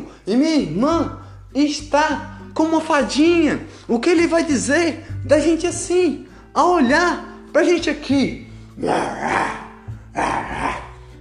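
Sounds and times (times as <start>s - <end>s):
speech: 0.3s - 9.6s, 10.2s - 10.5s
person imitating a lion's growl: 8.8s - 11.1s.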